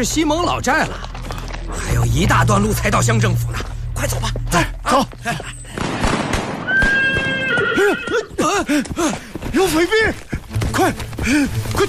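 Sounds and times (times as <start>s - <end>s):
speech: 0.0s - 5.6s, 7.8s - 11.8s
horses neighing: 6.7s - 9.2s.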